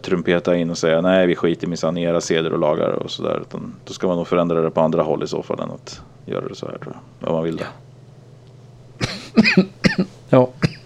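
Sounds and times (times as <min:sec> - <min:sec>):
speech: 0:00.0 - 0:07.8, 0:09.4 - 0:10.7
faint low hum: 0:00.0 - 0:10.8
person coughing: 0:09.0 - 0:10.8.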